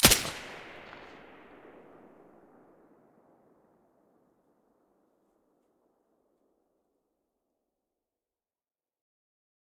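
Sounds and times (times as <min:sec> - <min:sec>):
weapons fired with silencer: 0:00.0 - 0:02.8.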